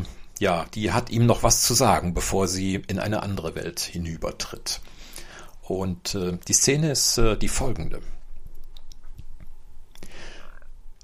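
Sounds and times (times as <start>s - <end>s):
speech: 0.4s - 5.0s, 5.7s - 8.2s
tongue clicks: 8.4s - 11.0s
wet lip smacking of an ill grandmother moistening dry lips: 8.4s - 11.0s.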